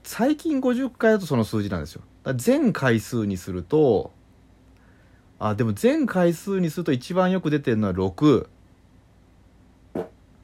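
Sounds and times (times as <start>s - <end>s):
speech: 0.1s - 4.2s, 5.4s - 8.6s
single short low fart: 9.9s - 10.2s.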